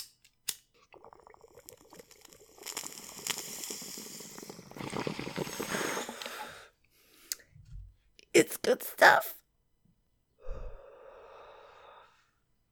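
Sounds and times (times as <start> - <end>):
water bubbling through a bong while smoking: 0.8 - 6.6
soft exhale: 2.7 - 7.5, 10.4 - 12.4
speech: 8.4 - 9.4.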